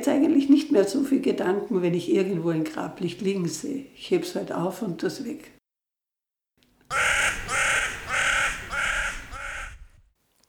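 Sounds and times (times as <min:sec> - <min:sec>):
speech: 0:00.0 - 0:05.6
crows cawing: 0:06.9 - 0:10.0.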